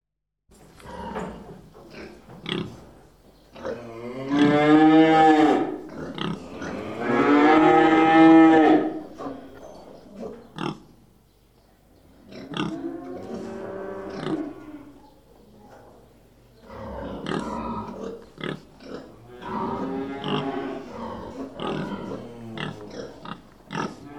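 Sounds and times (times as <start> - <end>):
pig grunting: 3.6 - 10.9, 12.2 - 15.0, 16.6 - 24.1
cows mooing: 3.7 - 9.5, 12.4 - 15.0, 16.7 - 24.1.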